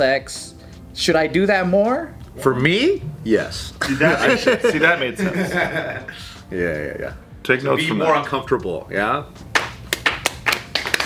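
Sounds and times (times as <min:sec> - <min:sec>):
speech: 0:00.0 - 0:09.4
laughter: 0:03.8 - 0:06.4
sharp hand claps: 0:09.4 - 0:11.0.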